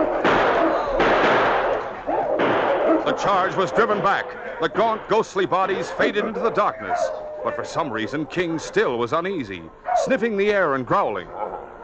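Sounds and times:
gunfire aimed at wolves charging a sled: 0.0s - 5.9s
speech: 3.2s - 11.5s.

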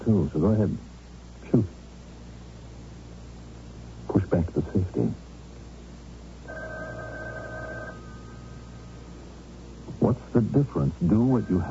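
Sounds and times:
low constant hum: 0.0s - 11.6s
speech: 0.1s - 0.9s, 1.5s - 1.8s, 4.3s - 5.2s, 10.1s - 11.6s
electronic telephone two-tone ring: 6.5s - 8.9s.

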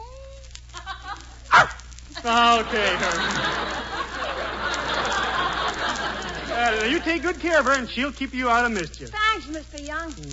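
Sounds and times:
low steady hum: 0.0s - 10.3s
laughter: 0.7s - 8.1s
female dog barking: 1.5s - 1.8s
speech: 2.2s - 3.7s, 6.6s - 10.3s.

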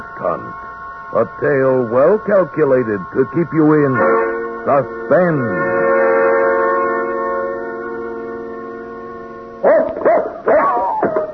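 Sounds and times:
long steady droning tone: 0.0s - 11.3s
speech: 0.1s - 5.9s
dog barking: 9.6s - 11.2s.

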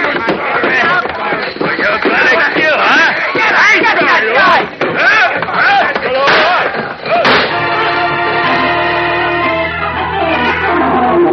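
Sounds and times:
people shouting in a brawl: 0.0s - 11.3s
chair smashing a man to the floor in a brawl: 6.2s - 7.7s
loud crashes in a brawl: 6.2s - 11.3s
gunshots into walls: 6.3s - 7.7s
sustained orchestral chord: 7.5s - 11.3s.

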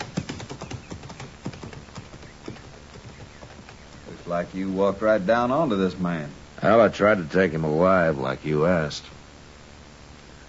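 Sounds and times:
horse hooves clip-clopping: 0.0s - 4.4s
speech: 4.3s - 9.2s.

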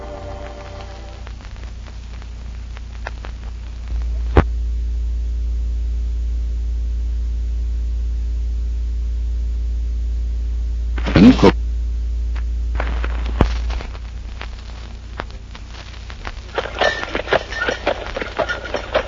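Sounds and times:
steady low electrical hum: 0.0s - 19.0s
horse hooves clip-clopping pulling a wagon: 13.9s - 19.0s.

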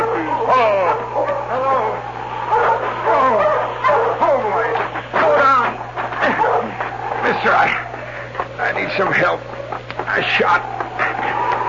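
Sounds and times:
dog barking urgently in sharp yelping barks: 0.0s - 1.8s, 2.4s - 5.6s, 6.2s - 6.8s
faint low hum: 0.0s - 11.6s.

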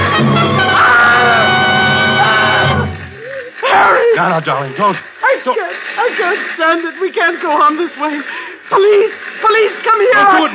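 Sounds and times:
woman shrieking: 0.7s - 1.5s, 2.2s - 2.6s, 3.2s - 4.2s
speech: 4.4s - 10.5s.

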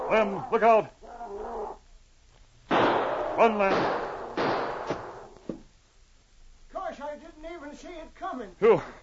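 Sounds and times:
speech: 0.1s - 1.0s, 3.4s - 4.1s, 7.2s - 9.0s
gunshots fired at a charging brown bear in a thicket: 2.7s - 5.4s.

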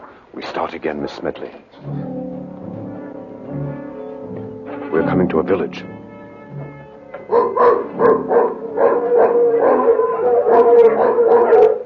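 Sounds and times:
speech: 0.4s - 2.1s, 4.9s - 6.0s
mongrel dogs barking and howling: 7.2s - 11.8s.

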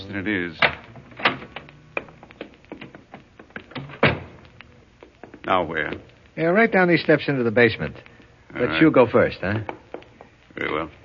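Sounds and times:
speech: 0.1s - 0.8s, 5.5s - 9.8s, 10.6s - 11.0s
wooden door opening and closing: 0.6s - 4.5s.

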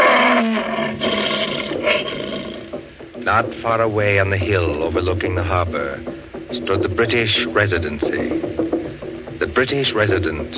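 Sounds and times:
lion roaring: 0.0s - 2.8s
speech: 3.3s - 8.7s, 9.4s - 10.5s.

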